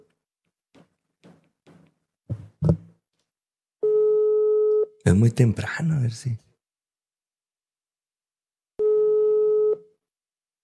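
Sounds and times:
telephone line tone while calling someone: 3.8 - 4.9, 8.8 - 9.8
speech: 5.1 - 6.5.

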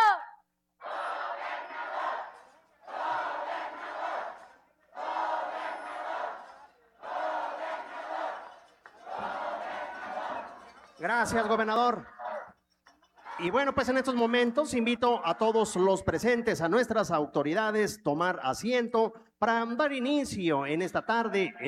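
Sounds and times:
large crowd chanting a cheer in unison: 0.0 - 11.0
speech: 11.0 - 12.2, 13.4 - 21.6.

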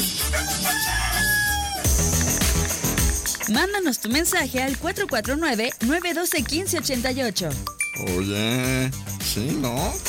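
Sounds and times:
bouncy music: 0.0 - 10.0
rooster crowing: 0.2 - 2.1
speech: 3.5 - 10.0.

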